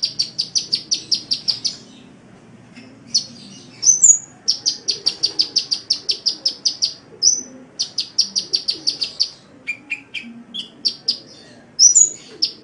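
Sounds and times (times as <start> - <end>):
Oriental magpie-robin song with high repeated notes and sweeping whistle: 0.0 - 2.2, 2.8 - 12.6.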